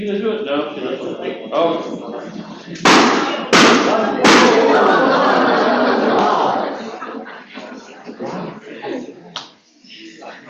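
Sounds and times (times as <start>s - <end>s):
speech: 0.0s - 4.1s
laughter: 1.0s - 9.3s
balloon popping: 2.8s - 4.7s.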